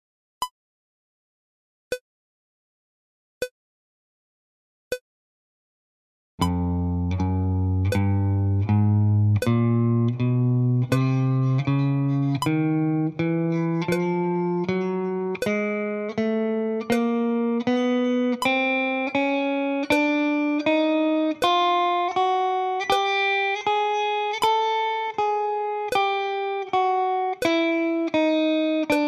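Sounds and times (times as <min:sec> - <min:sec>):
chromatic picking: 0:06.4 - 0:29.0.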